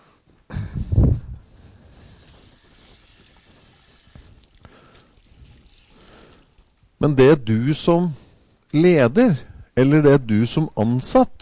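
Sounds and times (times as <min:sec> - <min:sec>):
high hiss of steam: 0:01.8 - 0:06.6
water poured onto a hot surface splashing: 0:02.5 - 0:06.8
speech: 0:07.0 - 0:11.3.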